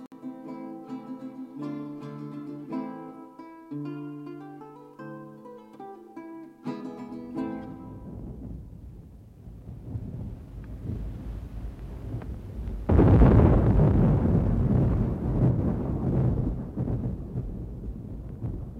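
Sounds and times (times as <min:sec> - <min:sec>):
thunder from a thunderstorm: 0:07.3 - 0:18.7.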